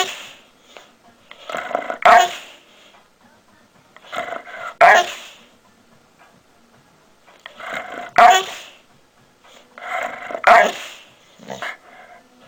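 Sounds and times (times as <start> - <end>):
Labrador Retriever barking: 1.4 - 2.6, 4.0 - 5.4, 7.5 - 8.8, 10.0 - 11.9.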